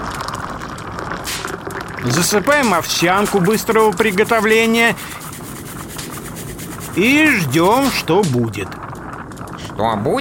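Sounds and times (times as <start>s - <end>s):
water pouring into a cooking pot: 0.0s - 10.1s
speech: 2.0s - 5.2s, 7.0s - 8.8s, 9.8s - 10.1s.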